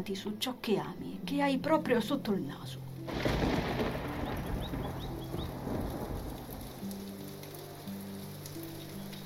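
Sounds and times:
speech: 0:00.0 - 0:03.7
heavy rain pouring down with a low rumbling undertone: 0:03.0 - 0:09.2.

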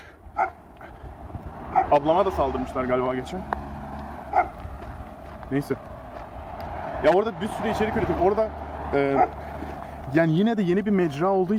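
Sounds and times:
dog barking outside: 0:00.3 - 0:00.7, 0:01.7 - 0:02.0, 0:04.2 - 0:04.7, 0:09.1 - 0:09.6
speech: 0:01.9 - 0:03.6, 0:05.5 - 0:05.9, 0:07.0 - 0:11.5.

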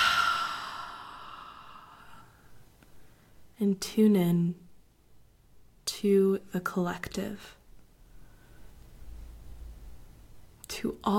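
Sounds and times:
deep breath exhaled: 0:00.0 - 0:02.5
speech: 0:03.6 - 0:04.6, 0:06.0 - 0:07.6, 0:10.8 - 0:11.1.

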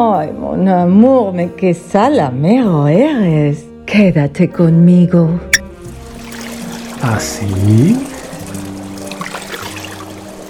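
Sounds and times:
speech: 0:00.0 - 0:05.6, 0:07.0 - 0:08.1
water pouring into a bathtub for a bath: 0:05.8 - 0:10.4.

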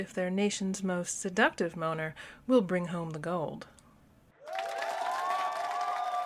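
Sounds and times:
speech: 0:00.0 - 0:03.8
large crowd cheering and roaring in the stands at an Olympic competition: 0:04.4 - 0:06.2.

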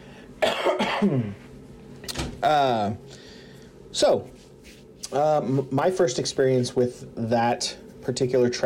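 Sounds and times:
person coughing with a throaty rasp: 0:00.4 - 0:01.4
speech: 0:01.0 - 0:01.4, 0:02.4 - 0:03.2, 0:03.9 - 0:04.4, 0:05.1 - 0:08.6.

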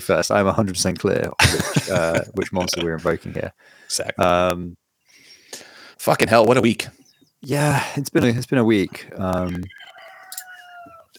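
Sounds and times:
speech: 0:00.0 - 0:04.8, 0:06.0 - 0:09.8
faint noise: 0:00.0 - 0:11.1
laughter: 0:01.3 - 0:03.5
rooster crowing: 0:09.7 - 0:11.1.

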